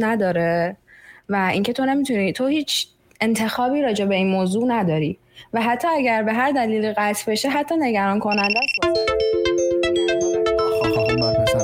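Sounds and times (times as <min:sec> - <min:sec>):
speech: 0:00.0 - 0:09.8
mobile phone ringtone from an incoming call: 0:08.3 - 0:11.6.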